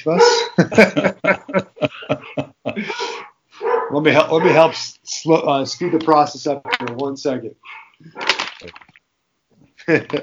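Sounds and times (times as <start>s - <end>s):
dogs barking excitedly with sharp yaps: 0.0s - 0.9s, 3.0s - 4.8s, 5.8s - 7.0s, 7.6s - 8.4s
speech: 0.0s - 1.7s, 4.0s - 8.8s, 9.9s - 10.2s
laughter: 0.0s - 3.3s, 9.8s - 10.2s
dog yelp: 0.1s - 0.6s, 3.6s - 4.6s, 6.7s - 6.9s, 7.6s - 8.3s.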